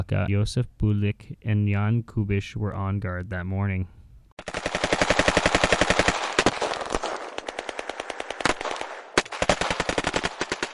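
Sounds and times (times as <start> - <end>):
speech: 0.0 - 4.0
automatic machine gun fire bursts: 4.4 - 10.7.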